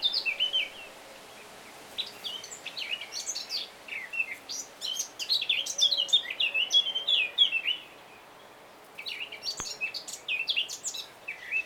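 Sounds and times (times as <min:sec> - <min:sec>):
Eurasian blackcap Sylvia atricapilla warbling song: 0:00.0 - 0:08.0, 0:09.0 - 0:11.6
Eurasian blackcap chirps: 0:02.0 - 0:11.6.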